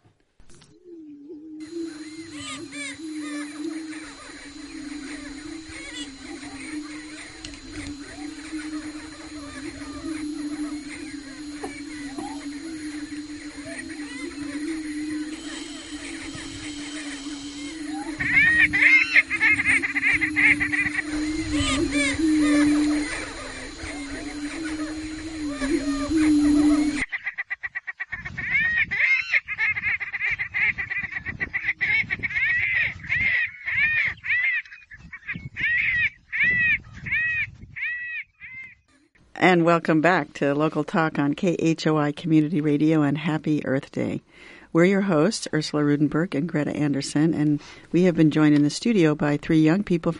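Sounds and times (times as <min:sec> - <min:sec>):
prairie chickens booming in low hollow hoots: 0:00.6 - 0:27.3
prairie chickens cackling calls: 0:01.6 - 0:37.2
speech: 0:39.5 - 0:50.1.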